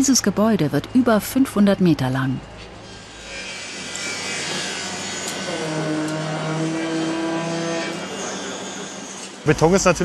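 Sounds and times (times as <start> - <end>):
speech: 0.0 - 2.6, 9.5 - 10.0
construction site machinery engines humming: 0.0 - 10.0
construction site motor whining: 2.4 - 10.0.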